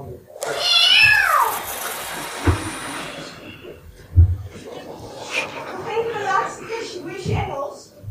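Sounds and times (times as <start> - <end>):
cat meowing: 0.4 - 3.6
laughter: 2.9 - 7.8.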